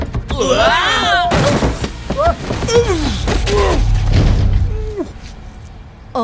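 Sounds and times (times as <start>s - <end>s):
people crashing into each other at door: 0.0s - 5.2s
overlapping groans and yelps: 0.3s - 4.0s.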